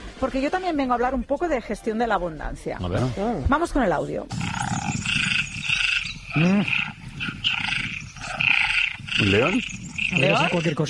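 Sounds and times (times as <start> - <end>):
speech: 0.2 - 4.8, 6.3 - 7.0, 9.2 - 10.8
deep roar-like croak: 4.3 - 10.8
tree frogs calling in chorus: 4.3 - 10.8.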